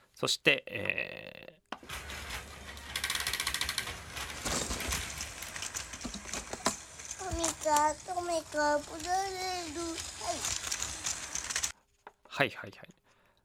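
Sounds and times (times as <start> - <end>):
speech: 0.2 - 2.1, 7.6 - 10.6, 12.4 - 12.9
die-cast toy car mechanism whirring and clicking: 1.8 - 11.8
young child's voice with short sung or spoken sounds: 7.1 - 10.7.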